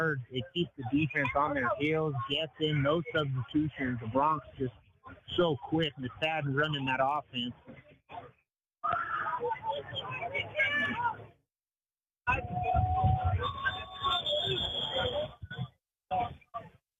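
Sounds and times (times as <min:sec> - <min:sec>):
speech: 0:00.0 - 0:11.2, 0:12.3 - 0:13.6
stadium crowd noise at an American football game: 0:00.0 - 0:11.4, 0:12.2 - 0:16.8
referee's whistle at an American football game: 0:12.8 - 0:15.6.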